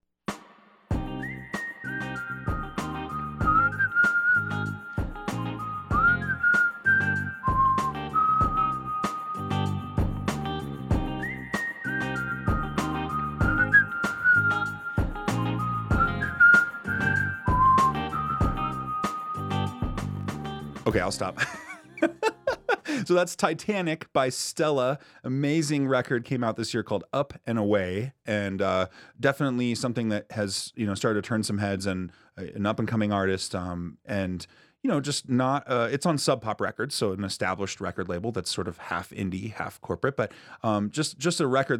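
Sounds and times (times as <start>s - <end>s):
recorded song with rhythmic backing of drums and instruments: 0.3s - 4.2s, 4.9s - 6.9s, 7.5s - 21.4s
person whistling a bright melody along with a recorded song: 1.1s - 10.1s, 11.0s - 20.1s
speech: 20.9s - 22.2s, 23.1s - 41.7s
laughter: 21.3s - 23.1s.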